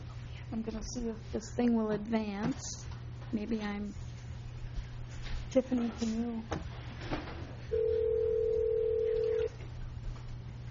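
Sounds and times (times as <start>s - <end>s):
low hum: 0.0s - 10.7s
speech: 0.5s - 4.1s, 5.5s - 8.0s
telephone ringing with a steady electronic tone: 7.7s - 9.5s.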